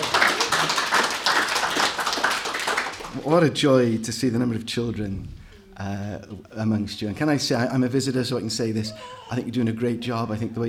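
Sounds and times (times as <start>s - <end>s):
congregation applauding in a place of worship: 0.0s - 3.3s
speech: 3.2s - 10.6s.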